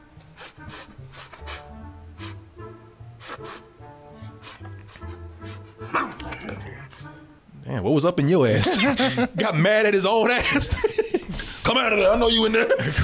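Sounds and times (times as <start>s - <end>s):
music track: 0.0s - 13.0s
cartoon goat voice imitating bow-wow dog barks: 5.8s - 6.4s
speech: 5.9s - 6.9s, 7.7s - 11.0s, 11.7s - 13.0s
laughter: 8.5s - 9.6s, 10.3s - 13.0s.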